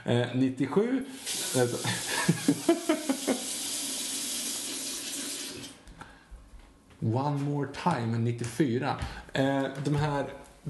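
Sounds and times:
speech: 0.0s - 3.5s, 7.0s - 10.6s
water pouring into a glass: 1.1s - 2.3s, 3.1s - 5.8s
laughter: 1.8s - 3.6s.

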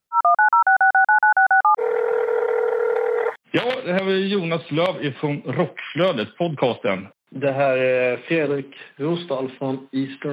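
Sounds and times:
touch-tone dialing keys beeping: 0.1s - 1.8s
telephone ringing tone: 0.1s - 3.4s
speech: 3.6s - 10.3s.

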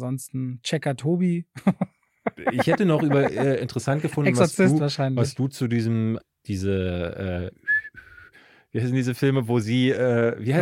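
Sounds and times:
speech: 0.0s - 7.9s, 8.7s - 10.6s
laughter: 1.6s - 4.8s
person whistling a film melody: 7.6s - 8.4s.

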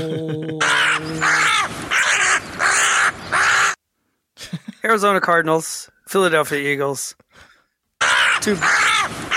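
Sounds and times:
crow cawing: 0.6s - 3.8s, 8.0s - 9.3s
speech: 4.9s - 7.5s, 8.4s - 9.2s.

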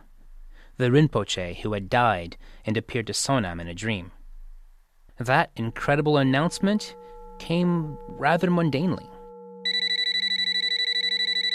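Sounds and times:
low steady hum: 0.0s - 11.5s
speech: 0.8s - 4.2s, 5.2s - 9.1s
telephone ringing: 9.3s - 11.5s.

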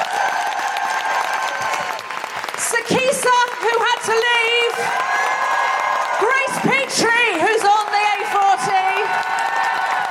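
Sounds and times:
audience in Brighton clapping: 0.0s - 10.0s.

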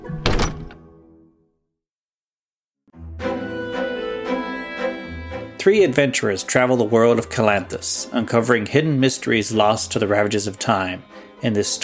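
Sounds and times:
heavy door opening and thudding shut: 0.0s - 0.9s
music: 0.0s - 1.6s, 2.9s - 11.8s
speech: 5.6s - 11.8s.

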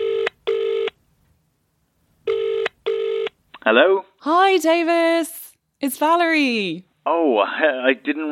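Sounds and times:
phone ringing tone on speakerphone: 0.0s - 1.0s, 2.3s - 3.4s
speech: 3.7s - 8.3s.

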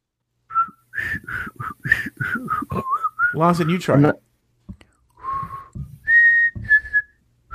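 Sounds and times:
person whistling a short catchy television show theme tune: 0.5s - 3.8s, 5.2s - 7.5s
speech: 3.3s - 4.3s.

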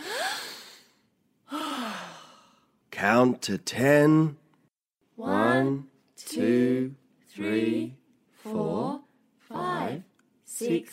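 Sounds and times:
person taking a deep breath: 0.0s - 2.8s
speech: 3.0s - 4.4s, 5.2s - 9.0s, 10.6s - 10.9s.

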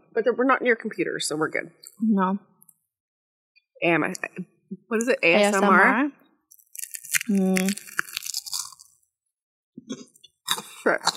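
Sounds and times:
speech: 0.2s - 2.5s, 3.8s - 6.2s, 7.2s - 8.0s, 9.9s - 10.1s, 10.8s - 11.1s
person chewing crackers with mouth open: 6.5s - 9.1s, 10.3s - 11.1s.

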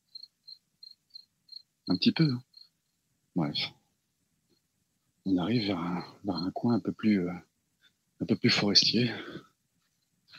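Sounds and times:
cicadas chirping: 0.0s - 3.1s, 5.3s - 7.2s
speech: 1.9s - 2.5s, 3.4s - 3.8s, 5.2s - 7.5s, 8.2s - 9.5s.

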